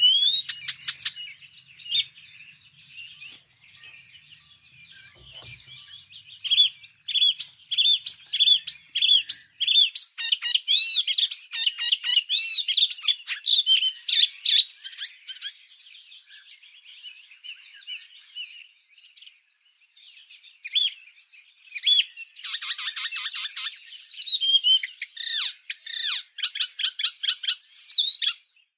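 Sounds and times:
icterine warbler song mimicking other birds: 0.0 - 28.7.

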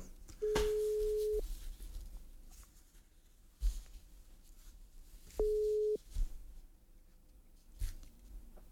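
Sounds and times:
telephone ringback tone while a call is placed: 0.4 - 1.4, 5.4 - 6.0.

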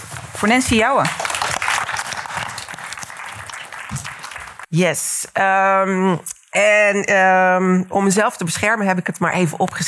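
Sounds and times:
speech: 0.4 - 1.2, 4.7 - 9.8
audience applauding to welcome a speaker before a lecture: 1.1 - 4.7.

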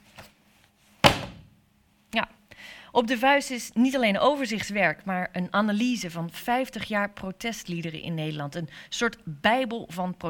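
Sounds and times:
thick book dropped onto a hard surface: 1.0 - 1.5
speech: 2.2 - 10.2.

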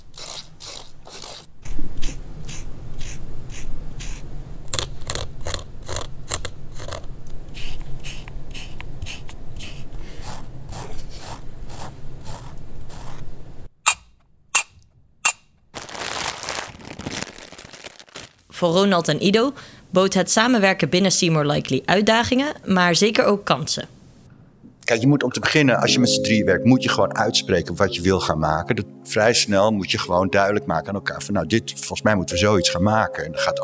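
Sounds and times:
sharp clicks: 0.0 - 10.9, 12.3 - 15.6
styrofoam sample from a plastics reference kit squeaking as it is rubbed: 0.0 - 24.3
speech: 18.6 - 24.0, 24.9 - 33.6.

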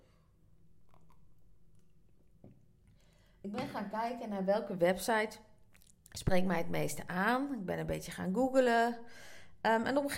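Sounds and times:
person sipping a drink: 0.8 - 3.4
speech: 3.4 - 5.5, 6.2 - 10.1.

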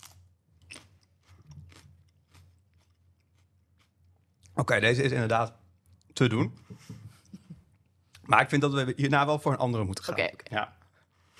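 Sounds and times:
person biting and chewing a raw green pepper: 0.0 - 4.6
speech: 4.6 - 5.6, 6.2 - 7.0, 8.3 - 10.8.

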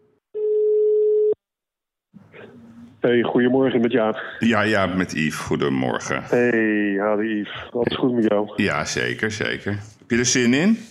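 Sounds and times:
telephone ringing tone while placing a call: 0.4 - 1.4
speech: 3.0 - 10.8.

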